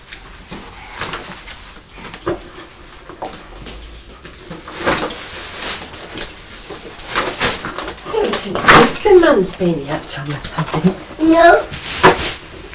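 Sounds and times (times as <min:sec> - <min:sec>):
chair dragged across the floor up to a table: 0:00.3 - 0:12.7
speech: 0:08.4 - 0:11.8.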